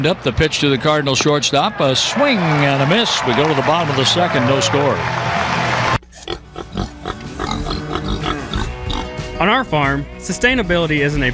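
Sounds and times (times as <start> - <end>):
speech: 0.0 - 5.6, 9.4 - 11.3
pigs grunting and snorting on a pig farm in Middletown Missouri: 6.0 - 9.2.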